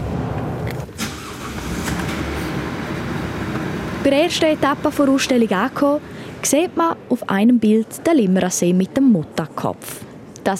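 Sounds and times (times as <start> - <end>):
bus engine rumbling in a cold power-plant tunnel: 0.0 - 8.1
speech: 4.0 - 10.5.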